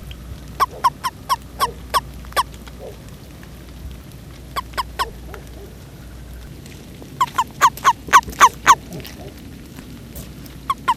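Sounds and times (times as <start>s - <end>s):
low hum: 0.0s - 10.7s
frog croaking: 0.6s - 3.0s, 4.5s - 6.0s, 7.2s - 9.4s, 10.7s - 10.9s.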